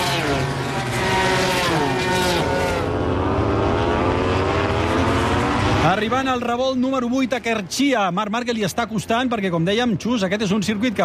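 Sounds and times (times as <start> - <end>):
racing motorcycle engines roaring past during a motorcycle race: 0.0 - 6.4
speech: 6.0 - 11.0.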